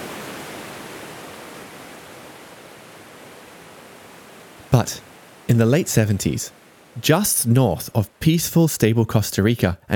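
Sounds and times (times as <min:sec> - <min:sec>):
waterfall rushing: 0:00.0 - 0:07.5
speech: 0:04.7 - 0:09.9.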